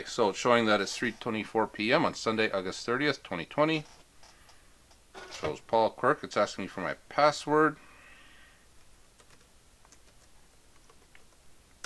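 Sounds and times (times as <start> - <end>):
speech: 0.0 - 4.0, 5.2 - 7.8
soft typing on a computer keyboard to log in: 9.2 - 11.8.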